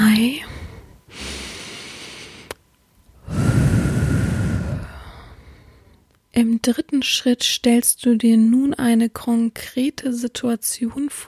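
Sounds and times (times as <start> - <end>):
speech: 0.2 - 1.2, 6.4 - 11.2
person breathing in through the nose and out through the mouth during relaxation exercise: 0.4 - 2.6, 3.2 - 6.0.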